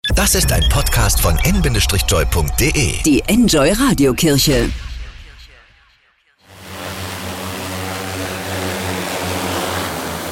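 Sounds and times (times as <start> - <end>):
speech: 0.2 - 4.9
drones buzzing and whirring in flight: 6.4 - 10.3.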